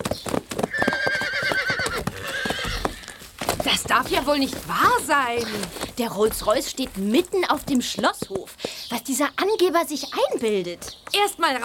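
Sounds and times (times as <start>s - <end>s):
two horses galloping toward a castle: 0.0s - 11.6s
horse neighing: 0.7s - 3.3s
speech: 4.0s - 11.6s.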